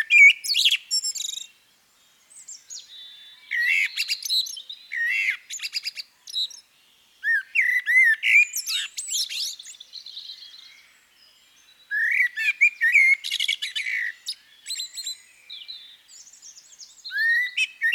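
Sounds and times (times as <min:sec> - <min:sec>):
Common blackbird Turdus merula singing fluty warbling phrases: 0:00.0 - 0:01.6, 0:02.3 - 0:17.9.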